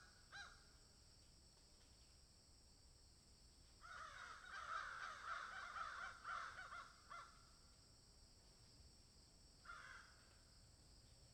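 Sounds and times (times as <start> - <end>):
several crows cawing in a field: 0.3 - 0.6, 3.8 - 7.4, 9.6 - 10.2.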